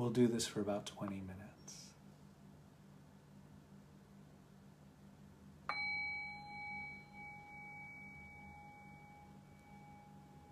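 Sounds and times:
speech: 0.0s - 1.8s
faint hum of a quiet room: 0.0s - 10.5s
meditation bell struck and ringing: 5.7s - 10.5s.

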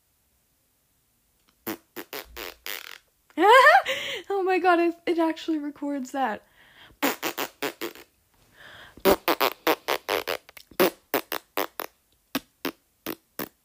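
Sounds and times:
fart noises: 1.6s - 3.1s, 7.0s - 8.1s, 9.0s - 13.6s
speech: 4.6s - 6.5s.

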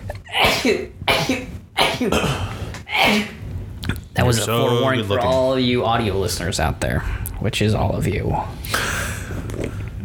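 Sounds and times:
person sneezing: 0.1s - 4.1s, 8.7s - 9.7s
speech: 0.6s - 8.9s.

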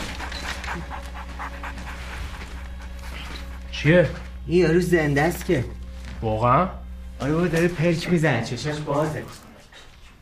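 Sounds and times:
dog panting: 0.0s - 4.4s
low constant hum: 0.0s - 10.2s
speech: 3.8s - 9.4s.

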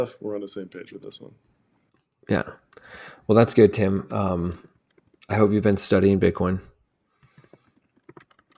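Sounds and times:
speech: 0.0s - 1.6s, 2.3s - 4.7s, 5.3s - 6.7s
typing on a computer keyboard: 7.2s - 8.5s.

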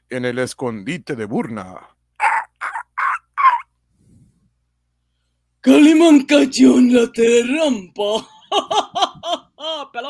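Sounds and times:
speech: 0.1s - 2.0s, 5.6s - 10.0s
harsh raspy calls from a flock of vultures lying in wait: 2.2s - 3.7s
laughter: 8.4s - 9.8s.

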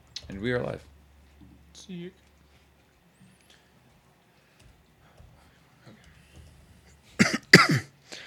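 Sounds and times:
speech: 0.3s - 0.9s, 1.8s - 2.2s
harsh coughs: 7.2s - 7.9s.

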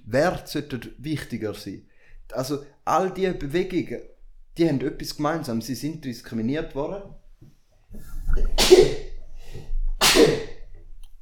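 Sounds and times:
speech: 0.1s - 9.7s
person sneezing: 8.4s - 10.6s.

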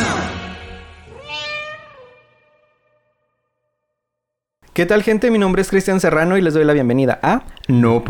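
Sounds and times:
cat meowing in a drawn-out meow: 1.1s - 2.8s
speech: 4.8s - 8.0s.

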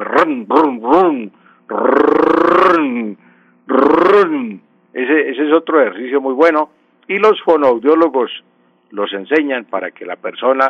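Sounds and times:
person imitating a car engine starting with their voice: 0.0s - 4.7s
speech: 0.2s - 10.6s.

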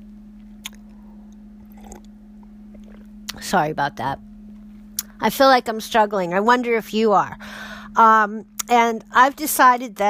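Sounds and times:
steady low electrical hum: 0.0s - 10.0s
wet swallowing: 0.6s - 2.1s, 2.7s - 3.1s
person sipping and slurping coffee: 0.6s - 3.1s
speech: 3.4s - 4.3s, 5.2s - 10.0s.

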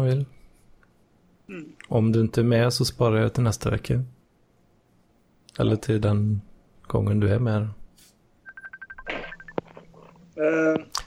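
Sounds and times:
speech: 0.0s - 0.4s, 1.5s - 4.2s, 5.6s - 7.8s, 10.4s - 11.0s
incoming chat call ringtone: 8.5s - 10.0s.

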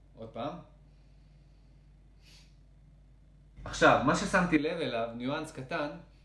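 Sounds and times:
steady low hum: 0.0s - 6.2s
speech: 0.4s - 0.7s, 3.8s - 6.1s
sharp inhale through the nose: 0.8s - 2.7s.

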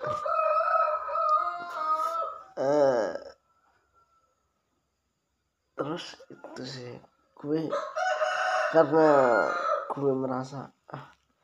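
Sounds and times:
roosters crowing behind the house at midnight: 0.0s - 2.8s, 7.7s - 10.0s
speech: 6.0s - 7.9s, 8.7s - 11.1s.

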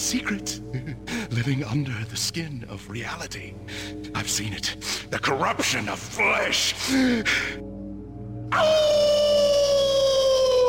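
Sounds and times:
speech: 0.1s - 7.7s, 8.5s - 9.1s
person howling like a wolf: 8.5s - 10.6s.

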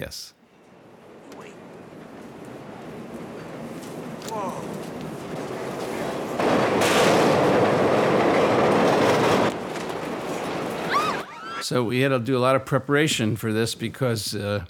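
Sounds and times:
speech: 0.0s - 0.4s, 4.3s - 4.7s, 11.7s - 14.6s
train commandeered for a film stunt rumbling along tracks: 0.5s - 11.3s.

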